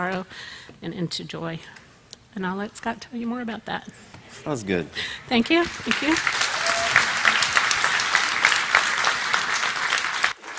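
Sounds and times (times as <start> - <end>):
speech: 0.0 - 6.4
audience applause: 5.6 - 10.5.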